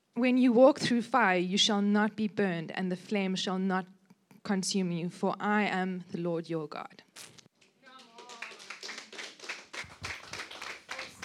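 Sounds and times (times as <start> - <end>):
speech: 0.2 - 7.3
crowd clapping: 7.6 - 11.2.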